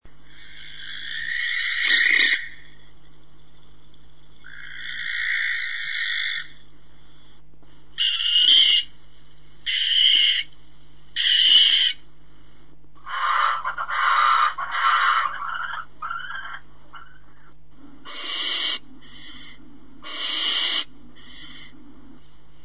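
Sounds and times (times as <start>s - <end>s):
barn owl: 0.1s - 3.2s, 4.2s - 12.1s, 13.0s - 22.6s.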